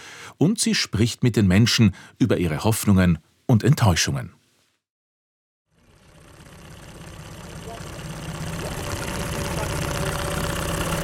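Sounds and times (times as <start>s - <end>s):
speech: 0.4s - 4.4s
wooden boat engine humming: 5.8s - 11.0s.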